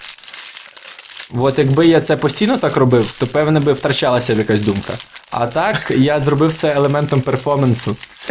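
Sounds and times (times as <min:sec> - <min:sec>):
empty cigarette pack being crumpled: 0:00.0 - 0:08.2
speech: 0:01.3 - 0:08.2.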